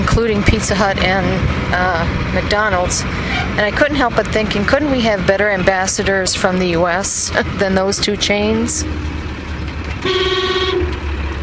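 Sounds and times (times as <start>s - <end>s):
steady rumble of engines in busy market street traffic: 0.0s - 11.4s
speech: 0.2s - 9.2s, 10.0s - 10.7s
long bright vehicle horn blast: 10.0s - 11.0s.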